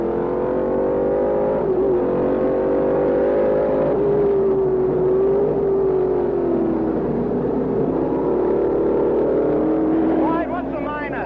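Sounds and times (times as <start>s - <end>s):
Can-Am race car engines roaring at full throttle: 0.0s - 11.2s.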